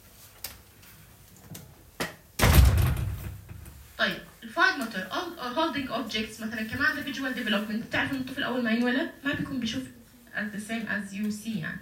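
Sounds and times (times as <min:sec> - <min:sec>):
door being closed with a heavy thud: 0:02.4 - 0:03.8
speech: 0:05.0 - 0:11.8.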